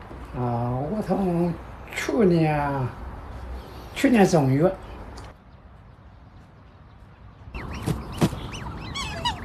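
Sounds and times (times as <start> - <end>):
speech: 0.3 - 3.0, 4.0 - 4.9
mature black swans honking: 7.6 - 9.4.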